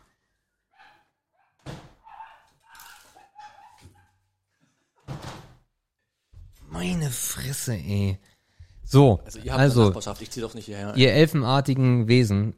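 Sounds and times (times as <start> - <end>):
dog barking: 0.7 - 4.3
speech: 6.8 - 8.3, 8.9 - 12.5.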